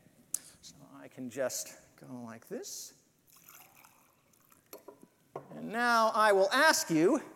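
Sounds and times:
speech: 1.1 - 3.0, 5.4 - 7.3
water pouring into a glass: 3.3 - 4.9
water dripping: 3.3 - 5.2.

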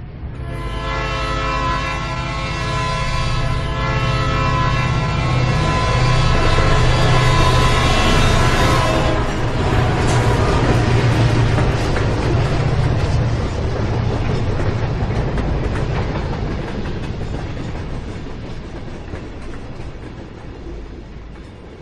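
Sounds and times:
passing train rumbling: 0.0 - 21.7
train horn blaring: 0.3 - 12.7
train wheels clattering on rails: 4.4 - 21.7.

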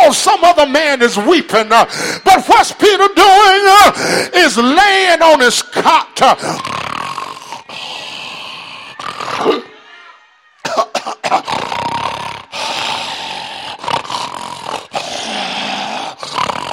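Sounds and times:
speech: 0.1 - 6.8, 9.3 - 9.7
preacher imitating loud snoring: 6.2 - 9.6, 11.2 - 16.7.

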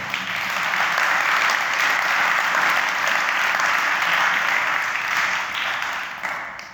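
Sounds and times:
audience applause for a prayer team: 0.0 - 6.7.

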